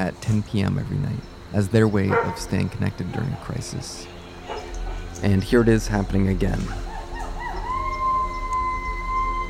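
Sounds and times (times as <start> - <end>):
speech: 0.0 - 4.2, 5.2 - 6.9
people in the neighborhood howling: 2.0 - 9.4
dog howling: 2.1 - 3.6, 4.4 - 5.2, 6.7 - 9.4.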